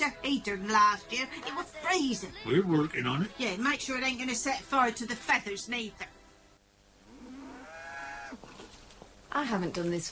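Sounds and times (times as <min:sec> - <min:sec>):
speech: 0:00.0 - 0:06.1, 0:09.3 - 0:10.1
cow mooing on a farm: 0:07.1 - 0:08.4.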